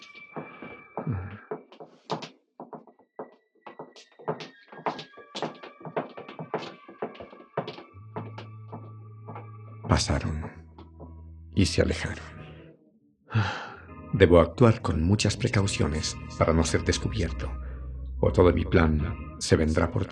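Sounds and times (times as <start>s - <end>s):
uneven thuds and taps of hurried footsteps: 0.0s - 11.1s
speech: 9.9s - 10.6s, 11.6s - 12.3s, 13.4s - 13.6s, 14.2s - 17.6s, 18.2s - 20.0s.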